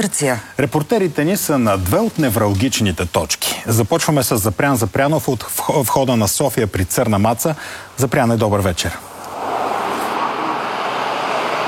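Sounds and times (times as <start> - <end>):
speech: 0.0 - 9.1
heavy car traffic on a motorway with jams building: 9.0 - 11.6.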